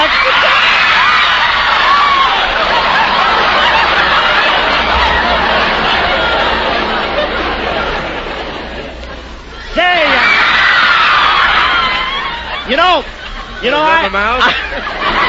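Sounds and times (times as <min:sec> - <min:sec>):
audience of young women screaming and cheering at a singer's show: 0:00.0 - 0:02.9, 0:09.6 - 0:13.0
laughter: 0:00.0 - 0:15.2
speech: 0:12.9 - 0:15.0.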